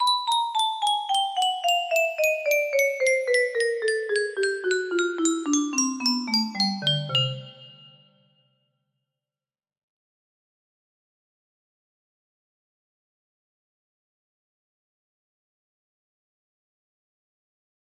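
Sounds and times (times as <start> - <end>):
music box melody playing a scale: 0.0 - 8.3.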